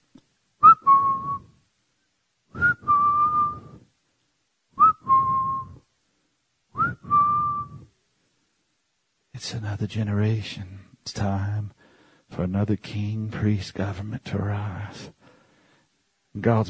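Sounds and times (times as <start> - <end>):
person whistling: 0.6 - 1.6, 2.5 - 3.9, 4.8 - 5.8, 6.8 - 7.9
speech: 9.5 - 15.2, 16.4 - 16.6.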